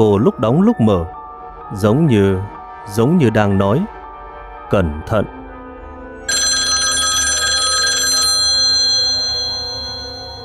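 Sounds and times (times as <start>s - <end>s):
speech: 0.0s - 4.0s, 4.7s - 5.4s
telephone bell ringing in a rapid trill: 6.2s - 10.4s.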